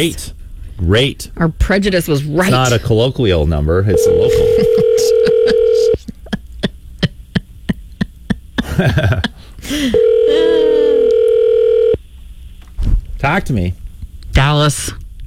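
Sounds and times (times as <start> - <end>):
speech: 0.0 - 4.8, 8.8 - 10.5, 13.2 - 13.8, 14.4 - 15.0
phone dialing beeps: 3.9 - 6.0
phone line dial tone: 3.9 - 6.0, 10.0 - 12.0
phone line noise: 3.9 - 6.0, 9.9 - 12.0
laughter: 4.1 - 11.1.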